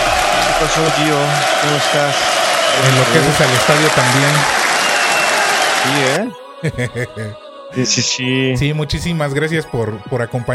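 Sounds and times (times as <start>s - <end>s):
loud applause ovation: 0.0s - 6.2s
speech: 0.6s - 4.7s, 5.8s - 10.5s
laughter: 6.6s - 7.4s.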